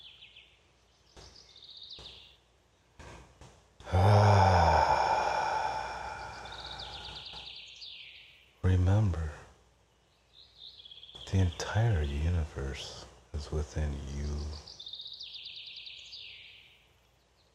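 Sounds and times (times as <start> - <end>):
soft bird chirps: 0.0 - 3.0, 4.0 - 17.5
deep breath with breathy sighing exhale during a calm meditation: 3.8 - 7.5
speech: 12.8 - 14.6.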